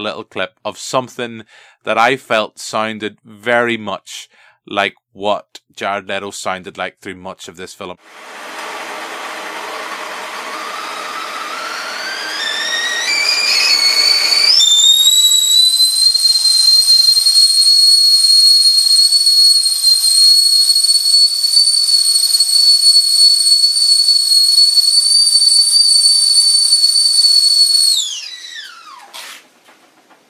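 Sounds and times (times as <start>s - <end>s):
speech: 0.0s - 8.6s
whistling kettle coming to the boil: 9.1s - 29.2s.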